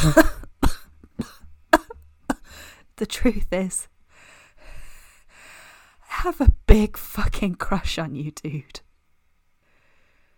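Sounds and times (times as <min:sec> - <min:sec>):
speech: 0:00.0 - 0:00.4, 0:03.0 - 0:03.9, 0:06.2 - 0:08.8
person giving wet phlegmy coughs: 0:00.0 - 0:02.5.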